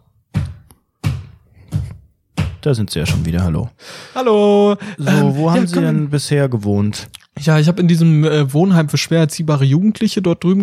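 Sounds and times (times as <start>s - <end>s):
loud heavy foot stamps: 0.3s - 3.2s
speech: 2.6s - 10.6s.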